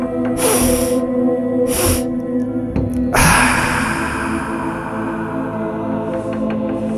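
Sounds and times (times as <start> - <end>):
soft music: 0.0 - 6.9
long steady exhale: 0.4 - 1.0, 1.7 - 2.2, 3.2 - 5.6
two sharp airy inhales: 0.4 - 1.0, 1.7 - 2.2, 3.2 - 5.6.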